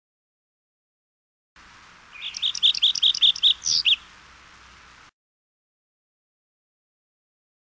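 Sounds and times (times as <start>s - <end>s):
olive warbler song: 2.0s - 4.2s.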